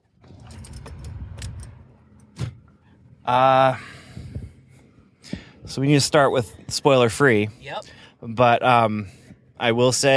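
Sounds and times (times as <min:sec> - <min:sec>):
car engine starting: 0:00.0 - 0:07.4
speech: 0:03.3 - 0:03.9, 0:05.7 - 0:10.1.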